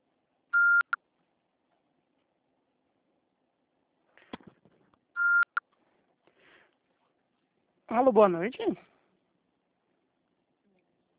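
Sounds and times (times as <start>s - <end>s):
voicemail beep before leaving a message: 0.6s - 1.0s, 5.2s - 5.6s
speech: 7.9s - 8.9s.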